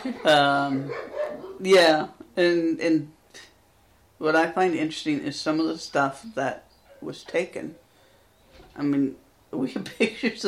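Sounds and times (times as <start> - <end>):
speech: 0.0 - 3.5, 4.2 - 7.8, 8.8 - 10.4
impatient dogs barking and whining: 0.7 - 1.7, 6.8 - 7.1.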